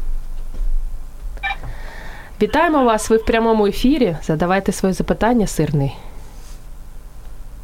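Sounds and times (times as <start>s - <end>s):
electronic incoming phone call tone: 1.4s - 4.0s
speech: 2.4s - 6.1s.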